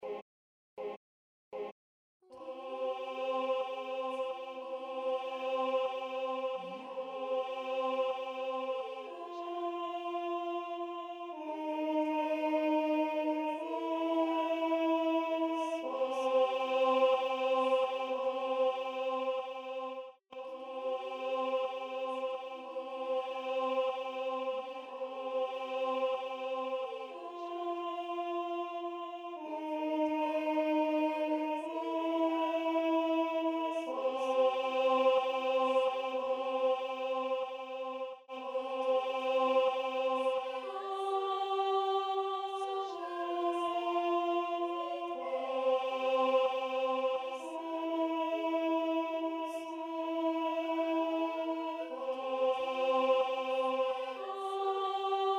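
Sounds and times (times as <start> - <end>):
alto voice singing a chorale: 1.6 - 55.3.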